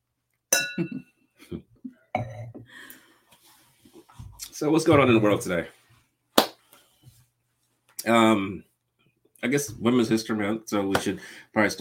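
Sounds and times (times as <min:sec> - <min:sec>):
wine glasses clinking in a toast: 0:00.5 - 0:01.0
speech: 0:00.8 - 0:02.9, 0:04.6 - 0:05.8, 0:08.0 - 0:08.7, 0:09.4 - 0:11.8.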